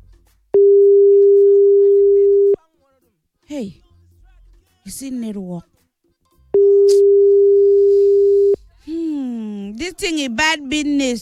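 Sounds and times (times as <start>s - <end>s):
outgoing telephone call ringing tone: 0.6s - 2.6s, 6.6s - 8.6s
speech: 3.5s - 3.8s, 4.8s - 5.7s, 9.9s - 11.1s.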